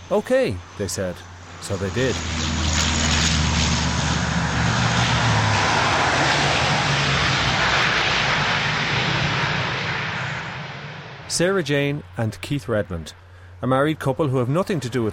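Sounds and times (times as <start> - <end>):
airplane roaring overhead: 0.0 - 15.1
speech: 0.1 - 2.4, 11.4 - 15.1.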